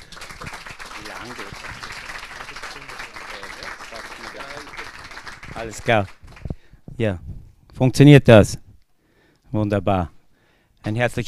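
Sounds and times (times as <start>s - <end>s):
sustained audience applause of many hands clapping: 0.0s - 6.5s
speech: 1.2s - 1.8s, 5.6s - 6.2s, 7.0s - 8.6s, 9.5s - 10.2s, 10.8s - 11.2s.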